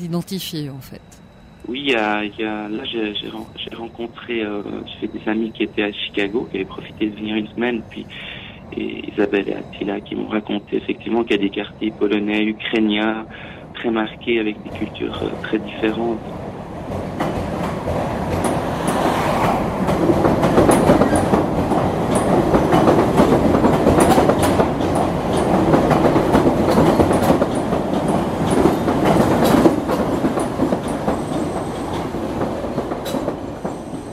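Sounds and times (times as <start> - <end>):
speech: 0.0 - 17.3
elevated metro train rumbling along its rails: 1.2 - 34.1
metro train wheels clickety-clack: 16.9 - 34.1.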